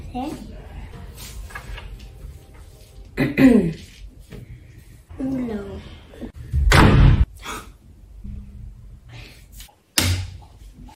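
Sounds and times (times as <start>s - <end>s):
speech: 0.2s - 0.6s, 3.2s - 3.8s
door slamming shut: 6.6s - 7.3s.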